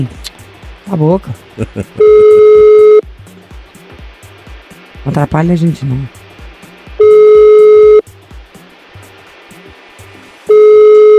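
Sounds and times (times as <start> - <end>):
speech: 0.0 - 0.3, 0.9 - 2.4, 5.0 - 6.2
laughter: 1.6 - 2.0
telephone call ringing unanswered: 2.0 - 3.0, 7.0 - 8.0, 10.5 - 11.1.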